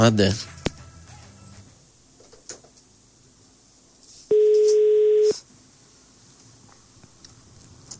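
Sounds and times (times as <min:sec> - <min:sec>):
speech: 0:00.0 - 0:00.5
telephone ringback tone while calling: 0:04.3 - 0:05.4.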